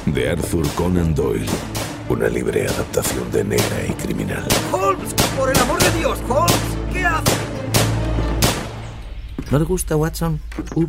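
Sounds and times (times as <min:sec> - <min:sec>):
speech: 0:00.1 - 0:07.5, 0:09.5 - 0:10.8
gunshots fired into a wall: 0:00.6 - 0:08.9.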